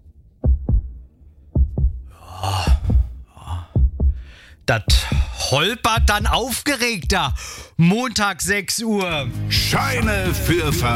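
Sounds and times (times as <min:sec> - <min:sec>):
slow steady heartbeat in low lub-dub pairs: 0:00.4 - 0:07.5
speech: 0:04.7 - 0:10.9.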